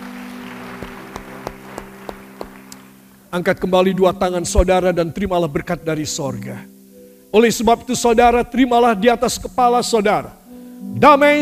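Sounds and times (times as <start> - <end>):
group clapping in unison: 0.0 - 3.2
speech: 3.3 - 11.3.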